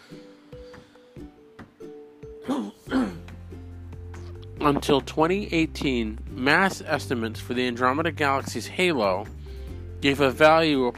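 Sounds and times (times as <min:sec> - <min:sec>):
harsh coughs: 0:02.4 - 0:03.3
speech: 0:02.5 - 0:03.2, 0:04.6 - 0:09.4, 0:10.0 - 0:10.9.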